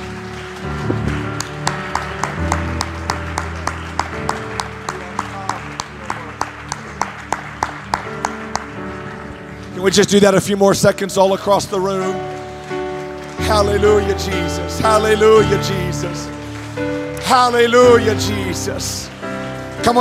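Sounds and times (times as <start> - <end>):
audience clapping hands in rhythm: 0.0 - 19.9
sustained music: 0.0 - 19.9
speech: 9.8 - 12.4, 13.5 - 19.1.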